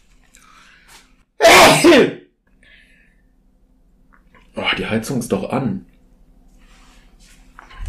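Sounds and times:
sneeze: 0:01.4 - 0:02.2
speech: 0:01.8 - 0:02.2, 0:04.9 - 0:05.9.

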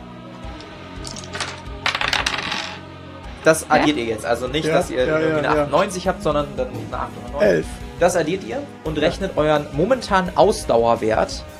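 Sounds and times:
two ten-sided dice rolling across a surface: 0:00.6 - 0:02.8
speech: 0:03.4 - 0:11.5.

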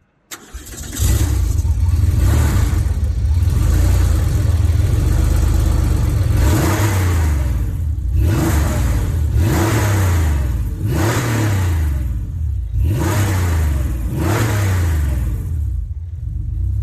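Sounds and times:
3.6-litre flat-six Porsche sports car engine revving: 0:01.0 - 0:16.8.

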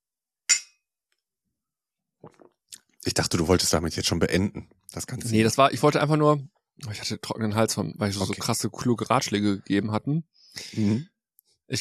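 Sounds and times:
glasses clinking in a toast: 0:00.5 - 0:00.7
speech: 0:02.2 - 0:11.1.

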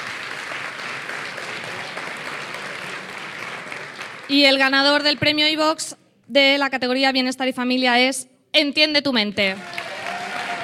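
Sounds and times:
audience applause: 0:00.0 - 0:05.2, 0:09.6 - 0:10.6
speech: 0:04.3 - 0:09.8.

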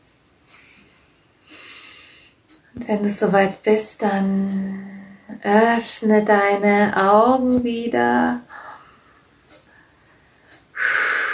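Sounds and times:
deep breath at the end of a guided relaxation exercise: 0:00.5 - 0:02.4, 0:08.5 - 0:11.3
speech: 0:02.8 - 0:08.5.

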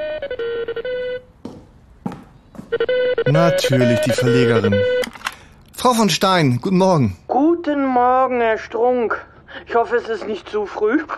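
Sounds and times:
telephone ringing with a short bright melodic ringtone: 0:00.0 - 0:01.3, 0:02.7 - 0:05.2
speech: 0:02.7 - 0:05.2, 0:05.8 - 0:11.1.

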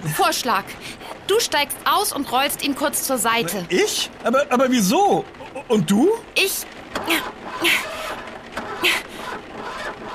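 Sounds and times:
speech: 0:00.0 - 0:08.0, 0:08.8 - 0:09.1
car engine cranking and struggling to start in the rain: 0:05.3 - 0:10.1.

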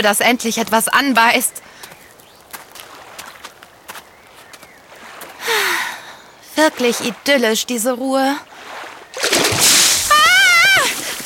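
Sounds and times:
speech: 0:00.0 - 0:01.6, 0:06.6 - 0:08.5
water splashing near someone fishing for trout: 0:06.5 - 0:07.8, 0:08.4 - 0:11.2
person crying out with a wavering raised voice: 0:10.1 - 0:11.2.

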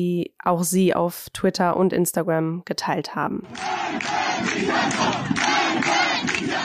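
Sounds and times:
speech: 0:00.0 - 0:06.6
large crowd of protesters chanting slogans in the street: 0:03.4 - 0:06.6
rhythmic surges of protesters' shouting voices: 0:03.5 - 0:06.6.

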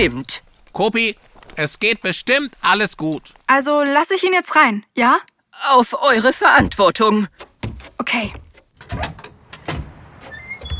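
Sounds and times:
speech: 0:00.0 - 0:09.2
door scraping open: 0:07.4 - 0:10.7.

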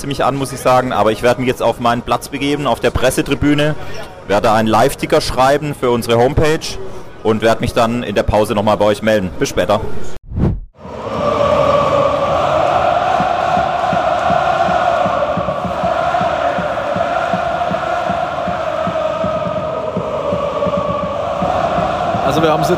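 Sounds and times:
speech: 0:00.0 - 0:10.2, 0:22.4 - 0:22.7
huge stadium crowd roaring and cheering before kickoff: 0:10.8 - 0:22.7.

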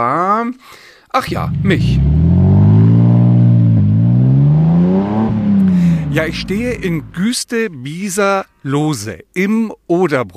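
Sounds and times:
speech: 0:00.0 - 0:02.1, 0:06.1 - 0:10.3
car engine revving through gear shifts: 0:01.3 - 0:07.2.

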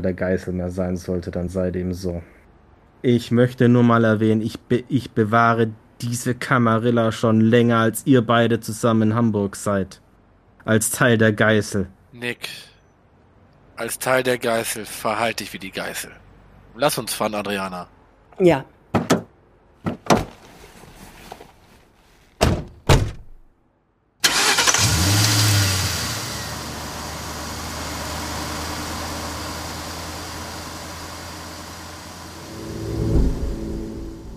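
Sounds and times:
speech: 0:00.0 - 0:02.4, 0:03.0 - 0:10.0, 0:10.6 - 0:12.7, 0:13.8 - 0:16.2, 0:16.8 - 0:19.0
car door thuds and clunks: 0:18.9 - 0:20.4, 0:22.4 - 0:23.4
car engine turning over and rumbling: 0:24.2 - 0:34.3.

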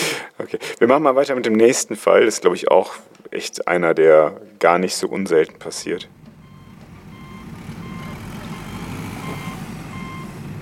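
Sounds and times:
speech: 0:00.5 - 0:06.3
truck engine rumbling at a construction site: 0:05.4 - 0:10.6
truck reversing alarm beeping: 0:05.9 - 0:10.6.

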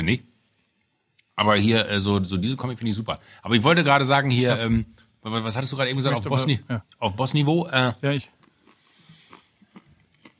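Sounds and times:
speech: 0:00.0 - 0:00.3, 0:01.4 - 0:08.4
person chewing a mouthful of nuts: 0:08.3 - 0:10.3.

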